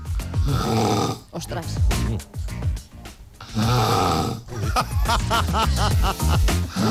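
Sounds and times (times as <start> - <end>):
woman snoring raggedly in a hospital bed: 0.3 - 1.3, 3.4 - 4.6, 6.7 - 6.8
speech: 0.5 - 2.9, 3.6 - 6.8
laughter: 4.5 - 6.8.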